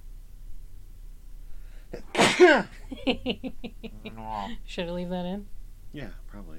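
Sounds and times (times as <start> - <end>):
quiet room hum: 0.0 - 6.5
speech: 1.9 - 6.5
person sneezing: 2.0 - 2.7
laughter: 2.7 - 4.5
person murmuring: 3.9 - 4.6.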